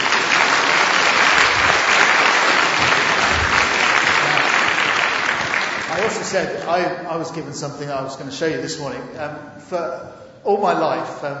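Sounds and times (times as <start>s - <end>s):
crowd of people clapping: 0.0s - 6.7s
speech: 6.3s - 11.3s.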